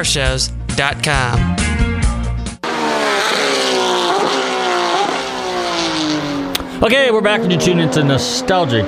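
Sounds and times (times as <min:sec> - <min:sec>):
speech: 0:00.0 - 0:01.7, 0:06.8 - 0:08.8
Porsche GT3 race car engine revving through gear shifts: 0:02.6 - 0:08.8.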